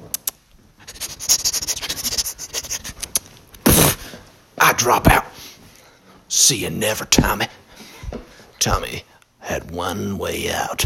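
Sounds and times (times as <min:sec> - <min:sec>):
pen scratching across paper: 0:00.9 - 0:03.0
speech: 0:04.8 - 0:05.2, 0:06.5 - 0:07.6, 0:08.6 - 0:10.8.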